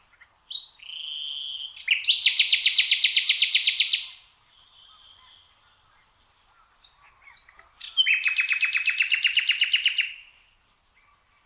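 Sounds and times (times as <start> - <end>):
common nightingale Luscinia megarhynchos singing: 0.0 - 11.4.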